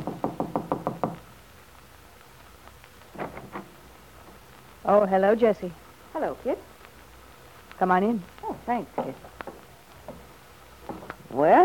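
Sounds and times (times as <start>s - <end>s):
knocking on a bungalow door: 0.0s - 1.2s
faint steady hiss: 0.0s - 11.6s
speech: 4.8s - 6.7s, 7.8s - 9.3s, 11.3s - 11.6s.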